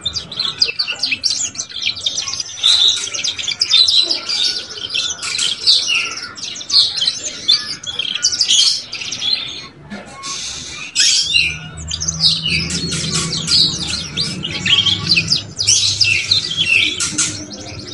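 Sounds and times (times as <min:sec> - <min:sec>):
Belgian canary song of bright rapid chirps and rolling trills: 0:00.0 - 0:17.9
low steady hum: 0:11.2 - 0:17.9.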